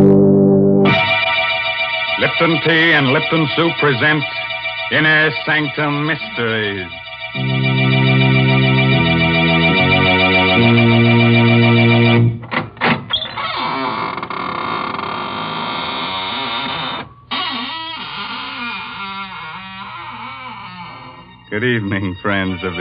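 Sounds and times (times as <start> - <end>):
sustained organ chord: 0.0 - 12.4
speech: 2.4 - 7.6, 21.6 - 22.7
squeaking door creaking slowly open: 12.4 - 21.6.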